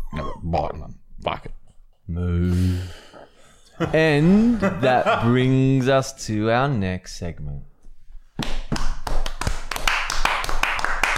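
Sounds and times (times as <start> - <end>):
speech: 0.1 - 3.0, 3.8 - 7.7
laughter: 3.7 - 5.8
hands clapping: 8.4 - 11.1.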